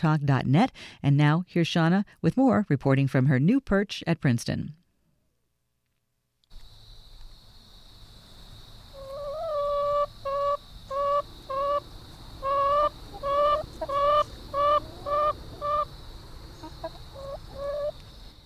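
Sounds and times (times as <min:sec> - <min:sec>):
speech: 0:00.0 - 0:04.8
backyard chickens clucking: 0:08.9 - 0:18.4.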